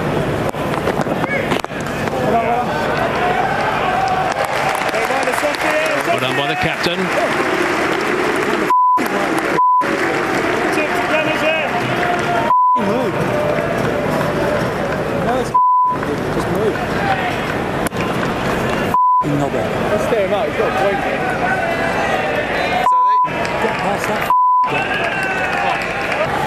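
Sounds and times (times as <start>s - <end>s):
crowd murmur: 0.0s - 26.4s
speech: 6.5s - 7.5s
short sharp censor beeps: 8.7s - 9.9s, 12.5s - 12.9s, 15.6s - 16.0s, 19.0s - 19.3s, 22.9s - 23.3s, 24.3s - 24.7s.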